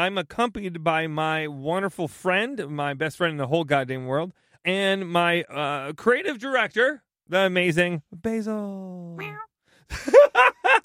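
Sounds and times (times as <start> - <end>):
speech: 0.0 - 10.8
cat meowing: 9.2 - 9.5.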